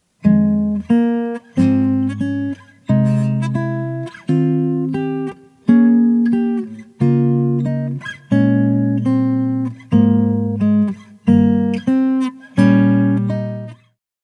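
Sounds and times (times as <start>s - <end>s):
guitar arpeggio inversions with passing tone: 0.2s - 13.9s.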